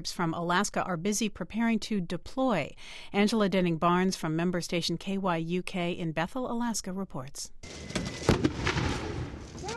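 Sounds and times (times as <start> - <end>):
speech: 0.0 - 8.7
simulated bombing blasts during a casualty training exercise: 7.6 - 9.6.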